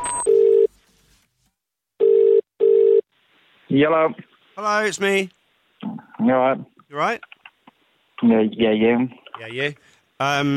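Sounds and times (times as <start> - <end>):
outgoing phone call ringing tone: 0.0 - 0.7, 2.0 - 3.0
speech: 3.7 - 5.4, 6.2 - 7.4, 8.2 - 10.5.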